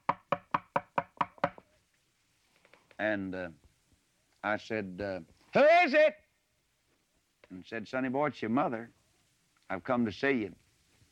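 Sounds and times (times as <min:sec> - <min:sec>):
firm knocking on a wooden door: 0:00.0 - 0:01.6
speech: 0:03.0 - 0:03.6, 0:04.4 - 0:06.2, 0:07.5 - 0:09.0, 0:09.7 - 0:10.6.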